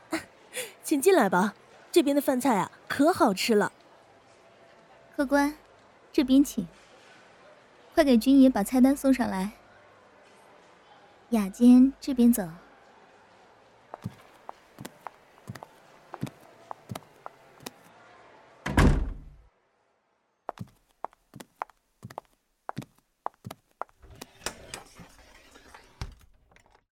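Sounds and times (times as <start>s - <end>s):
speech: 0.9s - 3.8s, 5.2s - 5.6s, 6.2s - 6.8s, 8.0s - 9.6s, 11.3s - 12.6s
door shutting in a restaurant's private dining room: 18.7s - 19.4s.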